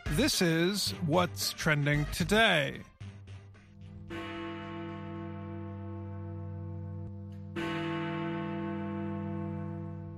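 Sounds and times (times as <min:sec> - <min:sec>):
speech: 0:00.1 - 0:02.9
large clock tower bell striking in London: 0:03.9 - 0:10.1.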